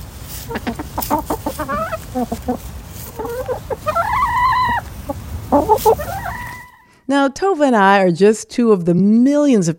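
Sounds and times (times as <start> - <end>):
low steady rumble: 0.0 - 6.8
backyard hens in the U.S. clucking and squawking: 0.0 - 6.9
speech: 0.5 - 1.4, 2.2 - 2.8, 7.1 - 9.7.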